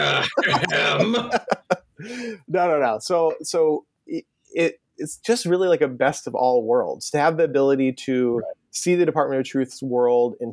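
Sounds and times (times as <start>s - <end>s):
loud rough throat-clearing cough: 0.0s - 1.7s
laughter: 0.0s - 2.2s
speech: 0.0s - 10.5s.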